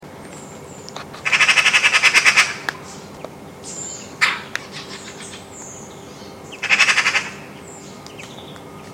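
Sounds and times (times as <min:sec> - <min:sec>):
Eurasian magpie rattling chatter of rapid harsh notes: 0:01.2 - 0:08.4.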